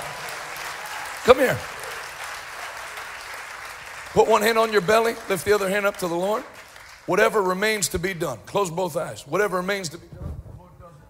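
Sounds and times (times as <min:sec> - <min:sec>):
crowd clapping: 0:00.0 - 0:08.3
speech: 0:01.2 - 0:01.8, 0:04.2 - 0:10.2.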